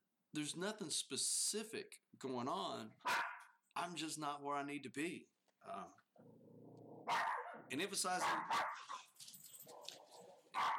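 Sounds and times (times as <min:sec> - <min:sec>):
speech: 0:00.3 - 0:03.2, 0:03.8 - 0:09.1
dogs barking as they are let out: 0:03.0 - 0:03.5, 0:07.0 - 0:10.7.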